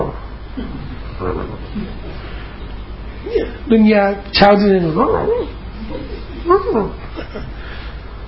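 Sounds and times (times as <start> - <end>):
speech: 0.6 - 2.4, 3.2 - 7.6
large wild animals growling and roaring while fighting over a carcass: 1.1 - 2.0.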